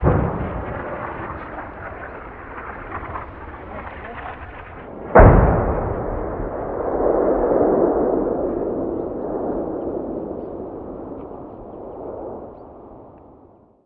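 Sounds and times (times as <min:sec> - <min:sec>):
medium artillery fire: 0:00.0 - 0:11.4.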